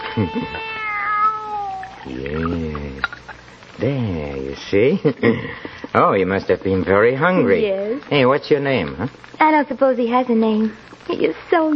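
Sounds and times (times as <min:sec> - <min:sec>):
speech: 0:00.2 - 0:00.8, 0:02.0 - 0:03.2, 0:03.8 - 0:11.7
young kitten meowing: 0:00.2 - 0:02.7.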